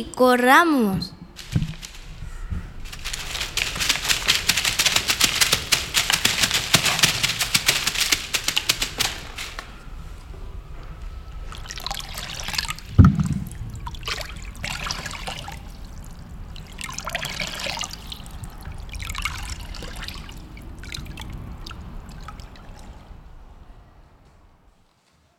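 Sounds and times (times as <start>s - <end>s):
speech: 0.0s - 1.2s
bright splashing bursts of water: 2.9s - 9.6s, 11.4s - 23.2s
continuous stream water trickling and babbling: 11.6s - 23.2s
brief low thump: 13.0s - 13.9s.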